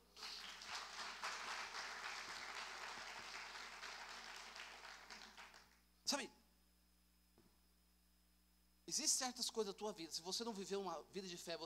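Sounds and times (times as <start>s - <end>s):
crowd applauding: 0.1s - 5.8s
speech: 6.1s - 6.4s, 8.9s - 11.6s.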